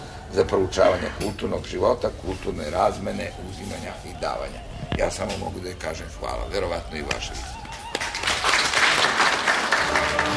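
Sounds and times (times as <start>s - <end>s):
speech: 0.3s - 7.6s
audience applauding at the end of a book presentation: 7.1s - 10.3s.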